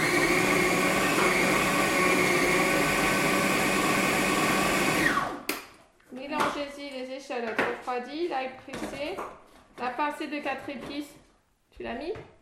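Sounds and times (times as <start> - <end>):
food processor grinding ham and meat pieces: 0.0 - 5.5
speech: 7.4 - 11.2, 11.8 - 12.3.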